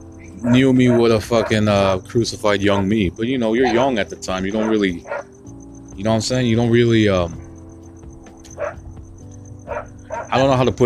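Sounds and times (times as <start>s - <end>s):
dogs barking: 0.0s - 5.4s, 7.3s - 7.7s, 8.4s - 8.9s, 9.6s - 10.8s
speech: 0.4s - 5.2s, 6.0s - 7.4s, 10.3s - 10.8s.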